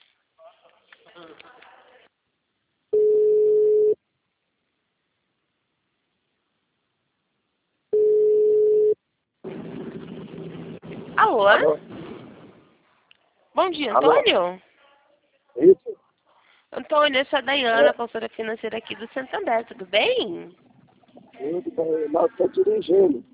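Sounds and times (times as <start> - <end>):
telephone ringing tone of an outgoing call: 3.0 - 4.0, 8.0 - 9.0
speech: 11.3 - 11.9, 13.6 - 14.7, 16.9 - 20.6, 21.4 - 23.3.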